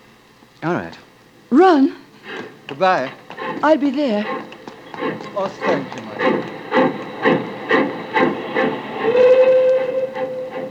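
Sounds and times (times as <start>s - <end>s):
speech: 0.6s - 2.0s, 2.7s - 4.4s, 5.0s - 6.6s
steam locomotive chugging as it departs: 1.2s - 10.6s
sustained steam train whistle: 5.3s - 10.6s.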